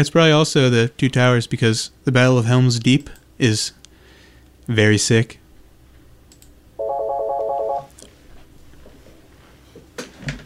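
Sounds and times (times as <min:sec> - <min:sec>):
speech: 0:00.0 - 0:03.8, 0:04.7 - 0:05.4
telephone ringtone: 0:06.8 - 0:07.9.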